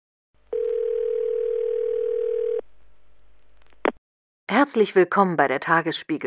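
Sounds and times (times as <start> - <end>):
steady electronic telephone ringing tone: 0.5 - 2.6
speech: 4.5 - 6.2.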